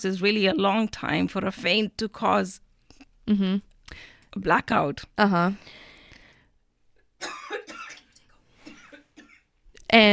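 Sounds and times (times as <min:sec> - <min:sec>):
speech: 0:00.0 - 0:02.6, 0:03.3 - 0:05.8, 0:09.9 - 0:10.1
person coughing in a harsh coughing fit: 0:07.2 - 0:09.5.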